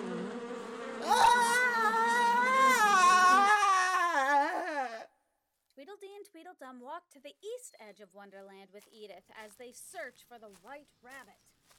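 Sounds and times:
bees buzzing: 0.0s - 4.0s
speech: 6.7s - 11.6s.

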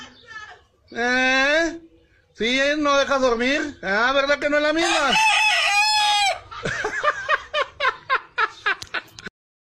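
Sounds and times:
speech: 0.9s - 5.4s
rooster crowing: 4.8s - 6.5s
laughter: 6.4s - 9.2s.

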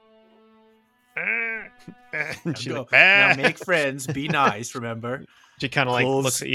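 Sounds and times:
human voice mimicking a sheep or goat bleat: 1.2s - 4.5s
laughter: 1.2s - 5.0s, 5.8s - 6.4s
speech: 1.2s - 6.5s.

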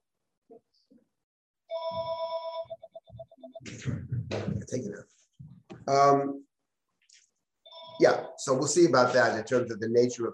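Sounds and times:
old-style telephone ringing: 1.7s - 3.6s, 7.7s - 8.4s
thumps: 3.2s - 5.9s
speech: 3.4s - 5.2s, 5.8s - 6.4s, 8.0s - 10.3s.

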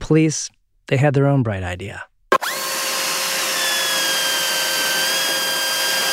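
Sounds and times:
speech: 0.1s - 2.1s
power drill drilling into bank vault: 2.3s - 6.1s.

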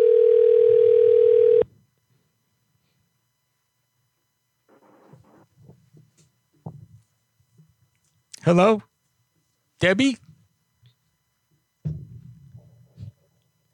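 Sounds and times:
phone ringing tone while calling someone: 0.0s - 1.7s
speech: 8.5s - 8.9s, 9.8s - 10.3s.

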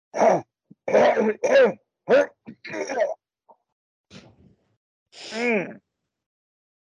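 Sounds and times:
person coughing forcefully to clear mucus from lungs: 0.2s - 3.2s
throat clearing: 0.2s - 3.2s.

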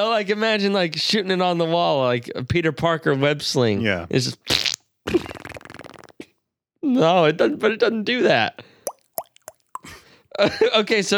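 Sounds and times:
speech: 0.0s - 5.3s, 6.9s - 8.7s, 9.8s - 11.1s
wet flapping mouth fart raspberry: 4.5s - 6.2s.

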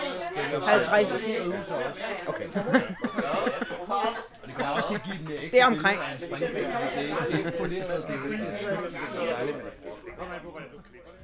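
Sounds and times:
festive crowd chatter: 0.0s - 11.2s
speech: 0.4s - 11.1s
people chuckling: 2.1s - 5.6s, 6.2s - 9.5s.

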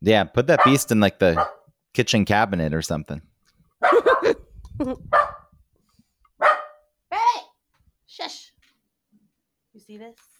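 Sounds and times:
speech: 0.0s - 3.3s, 3.9s - 5.2s, 9.9s - 10.3s
dog barking: 0.6s - 1.7s, 3.8s - 4.4s, 5.1s - 5.5s, 6.4s - 6.9s
laughter: 3.9s - 5.0s.

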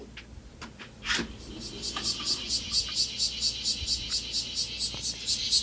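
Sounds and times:
cicada buzzing call: 1.1s - 5.6s.

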